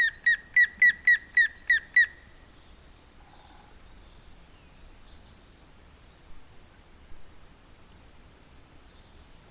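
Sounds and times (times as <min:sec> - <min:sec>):
grey-headed woodpecker calling whistled notes: 0:00.0 - 0:02.2.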